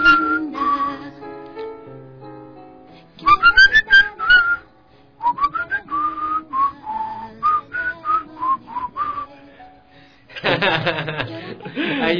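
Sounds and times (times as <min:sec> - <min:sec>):
person whistling a song: 0:00.0 - 0:01.1, 0:03.2 - 0:04.6, 0:05.2 - 0:09.4
laughter: 0:10.3 - 0:12.1.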